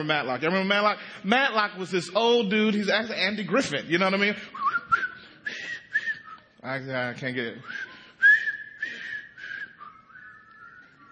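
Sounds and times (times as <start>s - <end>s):
speech: 0.0s - 4.7s, 6.6s - 7.9s
person whistling a tune: 4.5s - 6.6s, 7.6s - 11.0s.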